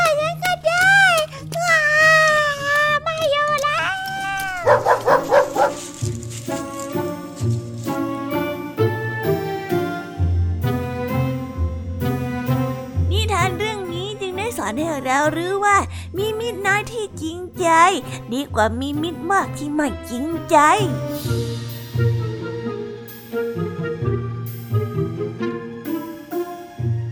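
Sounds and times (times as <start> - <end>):
steady stepping music: 0.0 - 27.0
hunting dogs whining with howl-like cries: 4.4 - 5.8
hunting dogs barking: 4.6 - 6.0
speech: 17.9 - 21.4.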